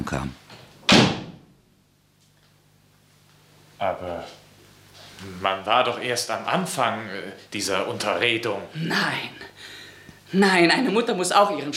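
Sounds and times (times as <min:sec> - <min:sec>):
speech: 0:00.1 - 0:00.4, 0:03.8 - 0:04.4, 0:05.2 - 0:09.7, 0:10.3 - 0:11.7
door falling shut into its latch: 0:00.8 - 0:01.6.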